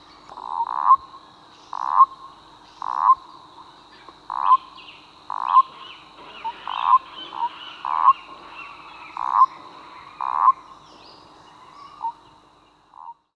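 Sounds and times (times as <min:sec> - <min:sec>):
animal sounds: 0:00.4 - 0:01.1, 0:01.7 - 0:02.2, 0:02.8 - 0:03.2, 0:04.3 - 0:04.7, 0:05.3 - 0:10.8, 0:12.9 - 0:13.3.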